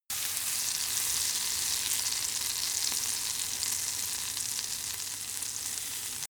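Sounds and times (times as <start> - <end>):
frying pan sizzle: 0.1 - 6.2.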